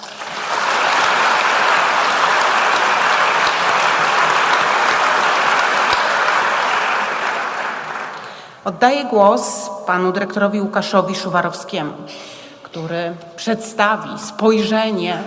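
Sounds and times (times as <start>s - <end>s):
audience applause: 0.0s - 8.5s
speech: 8.7s - 15.2s.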